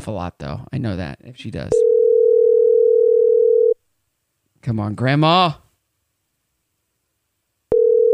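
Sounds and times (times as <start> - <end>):
speech: 0.0 - 1.9, 4.6 - 5.6
telephone ringback tone of an outgoing call to a cell phone: 1.8 - 3.8, 7.7 - 8.1.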